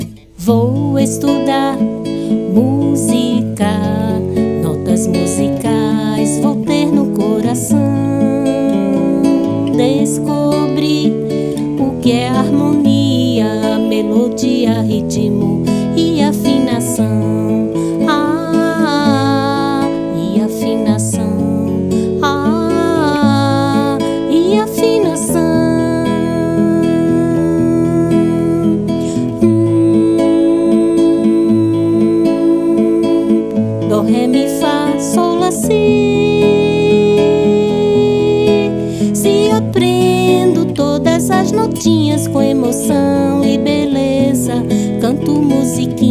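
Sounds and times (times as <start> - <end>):
person singing: 0.2 - 46.0.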